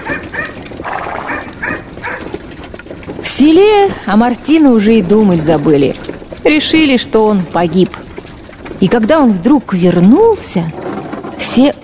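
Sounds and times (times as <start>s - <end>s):
dog barking at horses pulling a cart: 1.2s - 2.3s
speech: 3.4s - 8.0s, 8.8s - 11.8s.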